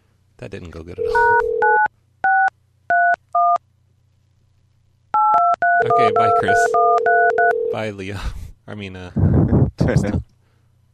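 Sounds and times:
faint low hum: 0:00.0 - 0:10.9
speech: 0:00.4 - 0:01.8, 0:05.9 - 0:10.3
telephone keypad dual-tone beeps while placing a call: 0:01.0 - 0:03.6, 0:05.2 - 0:07.7.

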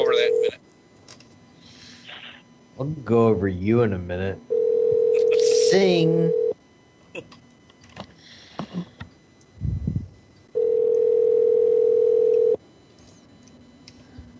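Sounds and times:
electronic telephone ring tone on the line: 0:00.0 - 0:00.5, 0:04.5 - 0:06.6, 0:10.6 - 0:12.6
speech: 0:02.8 - 0:04.6, 0:05.7 - 0:06.4, 0:07.2 - 0:07.4.

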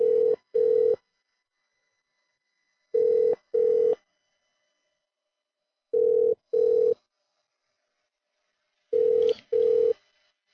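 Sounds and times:
telephone ringing over the line on a call to a restaurant and bar: 0:00.0 - 0:01.0, 0:03.0 - 0:04.0, 0:06.0 - 0:07.0, 0:09.0 - 0:10.0.

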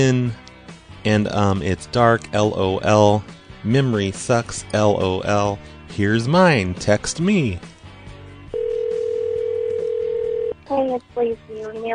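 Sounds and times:
speech: 0:00.0 - 0:07.7, 0:10.7 - 0:11.9
phone call ringing tone: 0:08.5 - 0:10.6.

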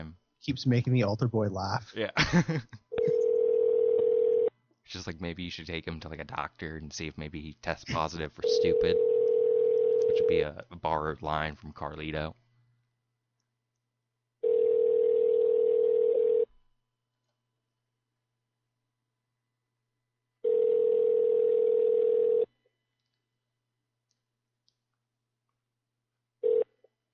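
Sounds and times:
speech: 0:00.4 - 0:02.8, 0:04.9 - 0:09.2, 0:10.1 - 0:12.4
phone line ringback tone before voicemail: 0:03.0 - 0:04.5, 0:08.4 - 0:10.4, 0:14.4 - 0:16.5, 0:20.4 - 0:22.5, 0:26.4 - 0:26.7.

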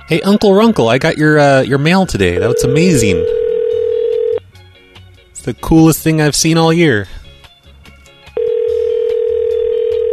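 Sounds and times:
speech: 0:00.1 - 0:03.4, 0:05.4 - 0:07.2
electronic ringback tone on an outgoing phone call: 0:02.3 - 0:04.4, 0:08.4 - 0:10.1.

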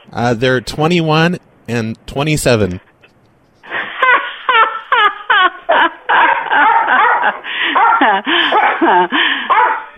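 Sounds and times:
speech: 0:00.1 - 0:02.9, 0:08.0 - 0:09.7
laughter: 0:03.6 - 0:09.5
dog barking over a phone line: 0:06.2 - 0:09.9.

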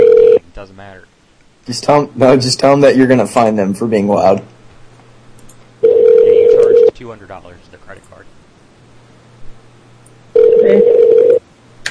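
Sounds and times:
phone ringback tone of an unanswered call: 0:00.0 - 0:00.4, 0:05.8 - 0:06.9, 0:10.4 - 0:11.4
faint low hum: 0:00.0 - 0:11.8
speech: 0:00.6 - 0:04.6, 0:07.0 - 0:08.3, 0:10.6 - 0:11.1.

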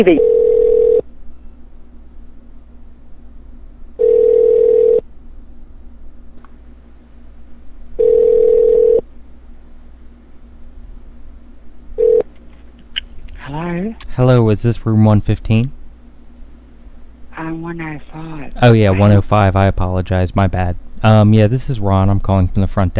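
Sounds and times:
speech: 0:00.0 - 0:00.3, 0:14.2 - 0:15.8, 0:17.7 - 0:22.9
telephone ringback tone on a call to a hotel room extension: 0:00.0 - 0:01.0, 0:04.0 - 0:05.0, 0:08.0 - 0:09.0, 0:12.0 - 0:12.2
low hum: 0:00.0 - 0:22.9.

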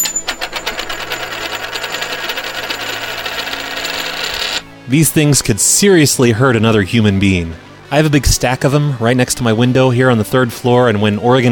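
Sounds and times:
heavy coin dropping onto a desk: 0:00.0 - 0:04.7
speech: 0:04.9 - 0:11.5.

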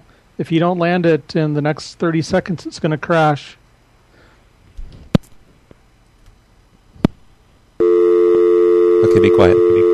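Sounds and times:
speech: 0:00.4 - 0:03.6, 0:09.2 - 0:09.9
steady telephone tone after the caller hangs up: 0:07.8 - 0:09.9.

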